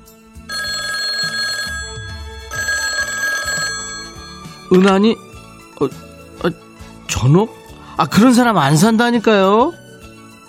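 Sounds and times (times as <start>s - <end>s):
telephone ringing with trilling bell tone: 0.4s - 5.0s
speech: 4.7s - 5.2s, 5.8s - 6.6s, 7.2s - 9.8s.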